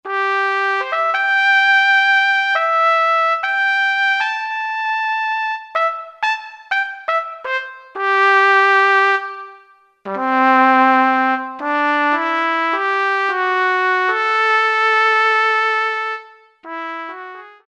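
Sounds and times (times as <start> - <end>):
orchestral trumpet sample from Kurzweil K2000 Orchestral ROM: 0.0 - 17.6.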